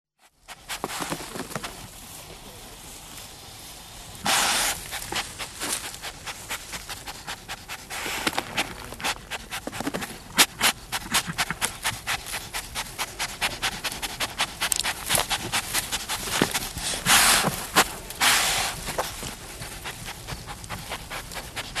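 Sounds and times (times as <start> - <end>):
Giant anteater snorting and sniffing: 0.2 - 2.0, 3.3 - 21.7
rapid clicking and rustling: 4.7 - 21.7.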